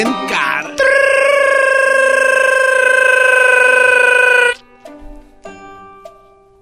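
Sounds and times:
brief faint electronic tones: 0.8s - 4.6s.

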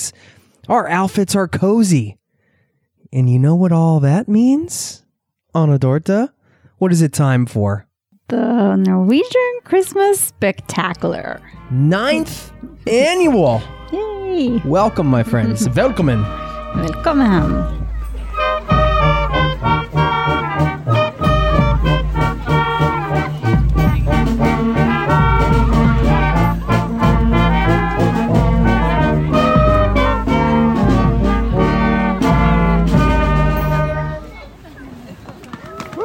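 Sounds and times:
speech: 0.0s - 2.2s, 3.1s - 17.8s
band playing lively brassy holiday tune at neighborhood event: 11.0s - 34.4s
laughter: 15.0s - 16.7s.

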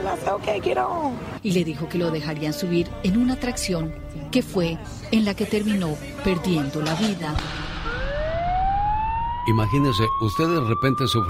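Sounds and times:
speech: 0.1s - 7.6s, 9.5s - 11.2s
ambulance siren wailing: 7.4s - 11.2s.

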